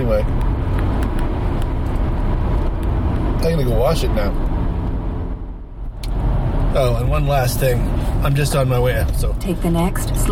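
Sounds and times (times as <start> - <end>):
car road noise inside the cabin: 0.0 - 10.3
speech: 0.1 - 0.6, 3.4 - 4.5, 6.8 - 10.3.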